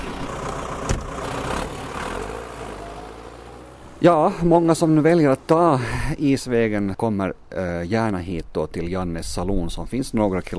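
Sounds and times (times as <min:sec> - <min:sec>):
tractor-mounted snow blower engine running: 0:00.0 - 0:04.0
speech: 0:04.0 - 0:10.5.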